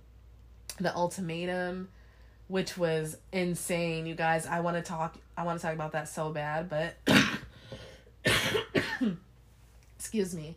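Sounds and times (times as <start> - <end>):
speech: 0.8 - 7.3, 8.6 - 9.3, 10.0 - 10.5
harsh chesty cough bringing up phlegm: 7.0 - 7.5, 8.2 - 9.3.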